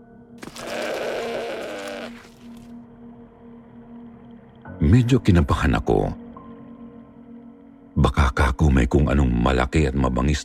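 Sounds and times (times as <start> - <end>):
goat bleating: 0.4 - 2.5
speech: 4.9 - 6.2, 8.0 - 10.4.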